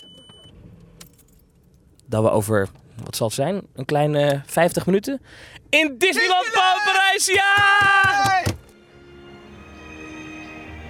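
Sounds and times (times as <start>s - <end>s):
keys jingling and clicking inside a car: 1.0s - 1.9s
speech: 2.1s - 8.5s.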